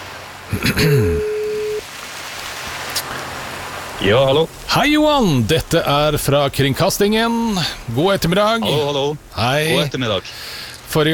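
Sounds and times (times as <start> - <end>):
speech: 0.5 - 1.3, 4.0 - 11.1
telephone ringing tone on an outgoing call: 1.1 - 1.8.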